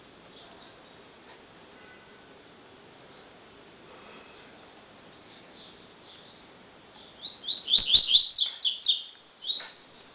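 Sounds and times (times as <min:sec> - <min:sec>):
double-collared seedeater singing whistled and buzzy phrases: 0:07.3 - 0:09.7.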